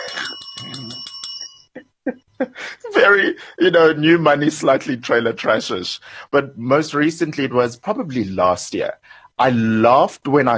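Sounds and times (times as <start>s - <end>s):
warning bell dinging: 0.0s - 1.7s
speech: 2.7s - 10.5s.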